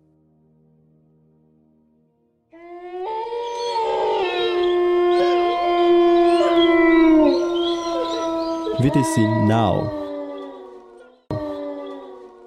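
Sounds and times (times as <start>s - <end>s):
speech: 2.5s - 2.8s, 8.8s - 10.0s
wolf pack howling in chorus: 2.6s - 12.4s.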